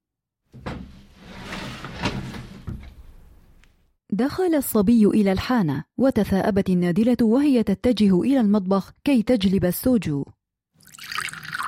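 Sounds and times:
door creaking and scraping open: 0:00.5 - 0:03.6
speech: 0:04.1 - 0:11.2.

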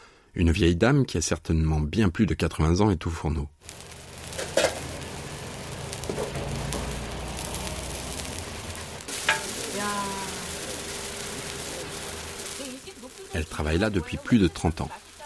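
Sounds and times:
speech: 0:00.4 - 0:03.8, 0:13.4 - 0:15.0
mung bean pancakes sizzling in hot oil in a frying pan: 0:03.6 - 0:15.2.

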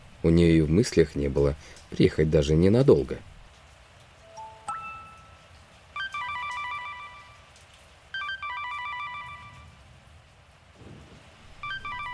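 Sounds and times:
steady hiss: 0:00.0 - 0:12.1
speech: 0:00.2 - 0:03.3
telephone ringing in electronic bursts: 0:06.0 - 0:07.5, 0:08.2 - 0:09.7, 0:11.6 - 0:12.1.

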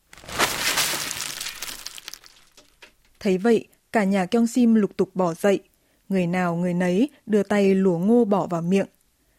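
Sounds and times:
corn kernels spilling onto hard floor: 0:00.0 - 0:02.8
speech: 0:03.2 - 0:09.0.

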